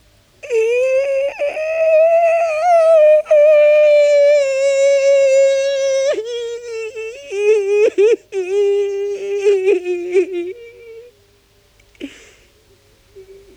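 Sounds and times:
man crying with a long wailing moan: 0.4s - 11.1s.

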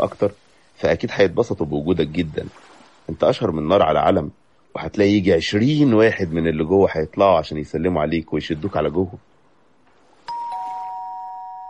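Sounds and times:
speech: 0.0s - 9.3s
two-tone doorbell chime at the door of a gathering: 10.3s - 11.6s.

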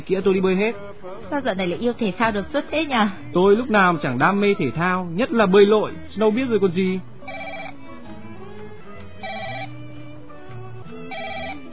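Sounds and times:
speech: 0.0s - 7.1s
steady musical background: 0.0s - 11.7s
telephone ringing: 7.3s - 7.8s, 9.2s - 9.8s, 11.1s - 11.7s.

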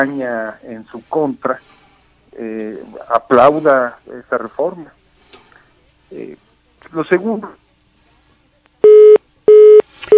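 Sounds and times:
speech: 0.0s - 1.8s, 2.4s - 5.0s, 6.1s - 7.6s
telephone tones as a phone call drops: 8.8s - 10.1s.

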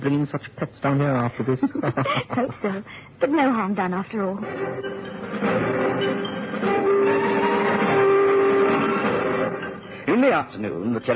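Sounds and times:
speech: 0.0s - 8.1s, 10.1s - 11.1s
train rumbling past: 4.4s - 10.6s
train horn: 5.9s - 9.9s.

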